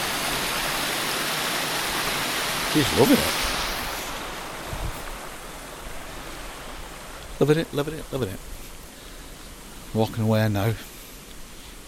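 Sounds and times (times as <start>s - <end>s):
water crashing down a waterfall: 0.0s - 8.4s
speech: 2.8s - 3.5s, 7.4s - 8.6s, 9.9s - 10.9s.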